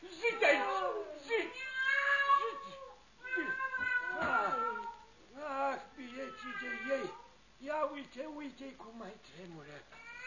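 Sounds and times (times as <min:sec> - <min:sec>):
cat meowing: 0:00.5 - 0:05.1, 0:06.0 - 0:07.3, 0:09.9 - 0:10.2
speech: 0:08.1 - 0:10.0.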